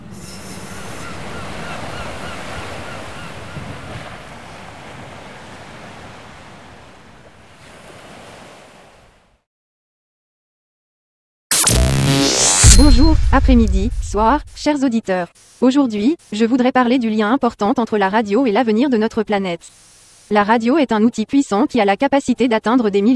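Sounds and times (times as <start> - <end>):
sea waves: 0.0 - 9.4
sudden loud burst: 11.5 - 14.7
speech: 12.9 - 23.1.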